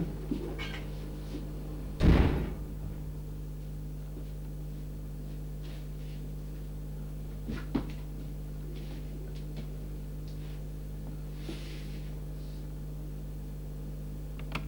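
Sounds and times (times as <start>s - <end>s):
steady low electrical hum: 0.0s - 14.6s
door shutting with a solid thud: 2.0s - 3.0s.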